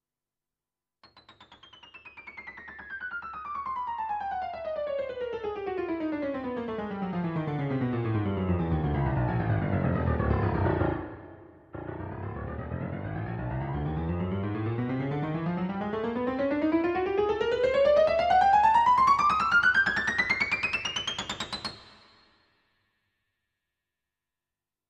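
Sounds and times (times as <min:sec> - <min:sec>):
honky tonk piano: 0:02.4 - 0:21.8.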